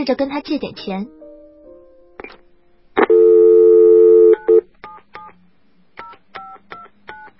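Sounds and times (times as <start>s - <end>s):
speech: 0.0s - 1.2s
phone line ringing: 3.0s - 4.6s.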